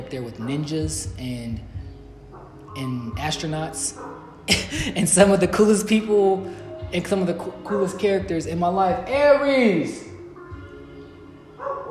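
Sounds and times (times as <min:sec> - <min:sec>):
speech: 0:00.0 - 0:01.8, 0:02.8 - 0:10.1
dog barking: 0:02.3 - 0:02.6, 0:04.0 - 0:04.4, 0:11.6 - 0:11.8.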